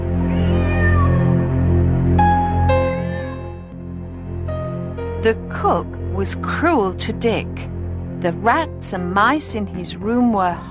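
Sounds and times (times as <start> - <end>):
steady low rumbling drone: 0.0 - 10.7
cat meowing: 0.2 - 1.4
speech: 5.2 - 10.7.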